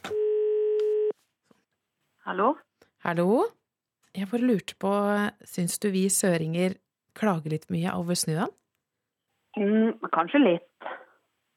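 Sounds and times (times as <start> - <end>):
telephone ringing tone of a call placed to Finnmark Norway: 0.1 - 1.1
speech: 2.3 - 8.6, 9.6 - 11.0.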